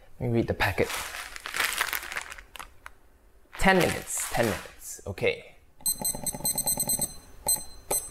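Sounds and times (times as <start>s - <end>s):
speech: 0.2s - 1.2s, 3.6s - 5.5s
kitchen timer beeping as it is set: 5.8s - 8.0s.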